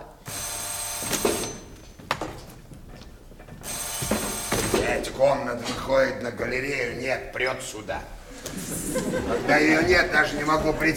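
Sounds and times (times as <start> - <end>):
noise: 0.0 - 10.9
old-style telephone bell ringing: 0.3 - 1.8, 3.6 - 4.9
speech: 5.0 - 10.9
laughter: 8.3 - 10.9.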